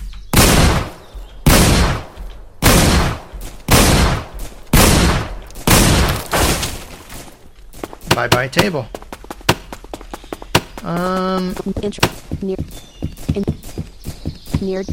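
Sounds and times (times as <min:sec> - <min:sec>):
Winchester shotgun firing in a video game: 0:00.3 - 0:06.9
speech: 0:08.2 - 0:09.0, 0:10.8 - 0:13.4, 0:14.6 - 0:14.9.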